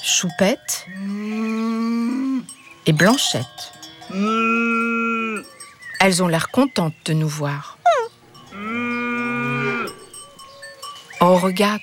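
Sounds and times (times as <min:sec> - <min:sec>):
speech: 0:00.2 - 0:01.5, 0:02.9 - 0:04.6, 0:06.0 - 0:07.8, 0:11.2 - 0:11.8
cow mooing while licking her calf clean: 0:01.0 - 0:02.5, 0:03.9 - 0:05.5, 0:07.9 - 0:10.9.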